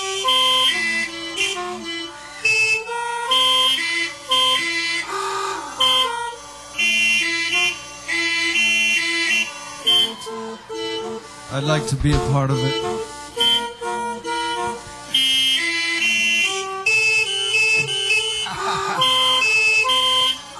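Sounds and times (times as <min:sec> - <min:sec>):
car horns honking in city traffic: 0:00.0 - 0:20.5
person singing along: 0:11.5 - 0:13.0, 0:18.5 - 0:19.2
speech: 0:11.6 - 0:13.0
laughter: 0:17.0 - 0:20.5.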